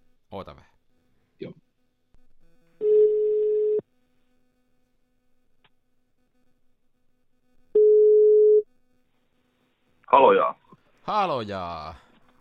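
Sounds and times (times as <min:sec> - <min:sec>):
speech: 0:00.3 - 0:00.7, 0:01.4 - 0:01.6, 0:11.1 - 0:12.0
ringback tones of an outgoing phone call: 0:02.8 - 0:03.8, 0:07.8 - 0:08.6.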